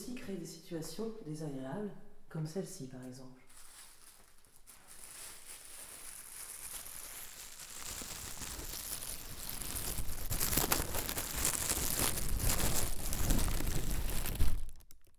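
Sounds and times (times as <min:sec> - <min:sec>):
speech: 0:00.3 - 0:03.4
plastic bag crinkling over listener's head: 0:03.4 - 0:15.1.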